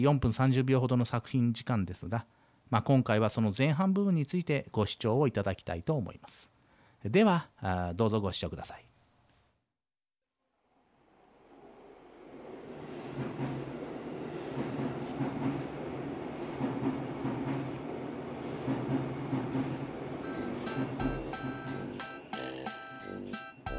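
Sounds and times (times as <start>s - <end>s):
speech: 0.0s - 8.9s
train rumbling along the rails with a low continuous roar: 11.1s - 22.3s.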